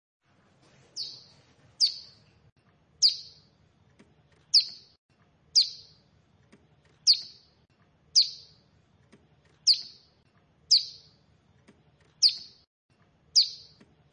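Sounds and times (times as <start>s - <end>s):
bar-winged prinia giving high sharp down-slurred chirps: 1.0s - 2.2s, 3.0s - 3.5s, 4.4s - 6.1s, 6.9s - 8.6s, 9.6s - 11.2s, 12.2s - 12.7s, 13.3s - 13.8s.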